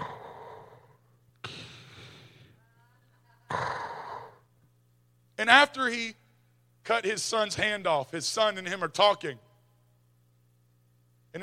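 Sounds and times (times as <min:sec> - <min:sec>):
person imitating heavy wheezing respirator breathing: 0:00.0 - 0:02.6
faint low hum: 0:00.0 - 0:11.4
speech: 0:05.4 - 0:06.2, 0:06.8 - 0:09.4.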